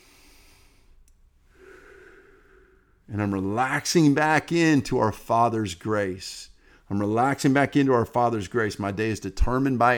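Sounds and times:
person taking big deep breaths while praying: 0.0 - 3.1, 6.6 - 6.9
speech: 3.1 - 9.9.

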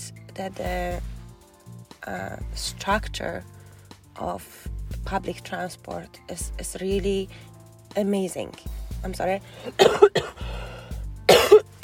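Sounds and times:
low rumbling hum: 0.0 - 5.7, 8.7 - 11.4
speech: 0.4 - 1.1, 2.0 - 3.6, 4.2 - 10.7
person with allergies coughing harshly: 9.6 - 10.5, 11.3 - 11.8.

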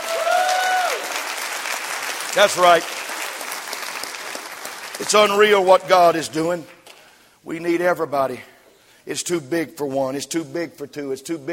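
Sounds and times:
congregation applause: 0.0 - 5.6
speech: 2.4 - 3.0, 5.0 - 6.8, 7.4 - 11.5.

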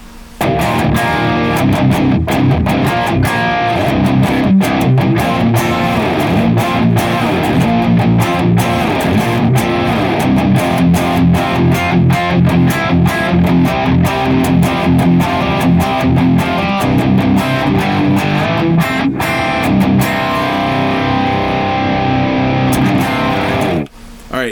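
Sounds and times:
heavily distorted electric guitar riff through stereo cabinet impulse responses: 0.0 - 24.0.

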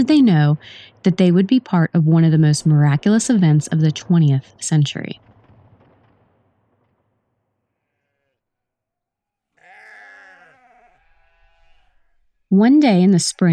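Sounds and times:
speech: 0.0 - 5.3, 12.5 - 13.5
sheep bleating: 9.6 - 12.2.

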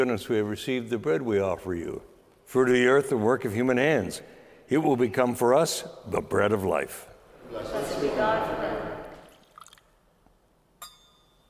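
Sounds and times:
speech: 0.0 - 8.6
water poured into wine in a chalice: 9.1 - 10.2
bright clink: 10.8 - 11.4.

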